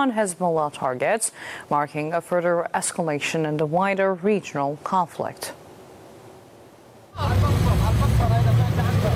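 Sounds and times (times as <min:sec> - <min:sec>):
speech: 0:00.0 - 0:05.6
dense street traffic of cars fleeing the southern suburbs of Beirut: 0:07.1 - 0:09.1.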